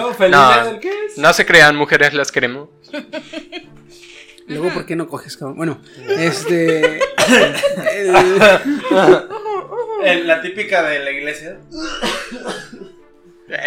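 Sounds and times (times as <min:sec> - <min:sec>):
speech: 0:00.1 - 0:09.4, 0:10.0 - 0:12.9
voiced laughter-like sounds: 0:02.9 - 0:04.4, 0:06.0 - 0:10.2
person coughing: 0:07.2 - 0:07.7, 0:11.7 - 0:12.9.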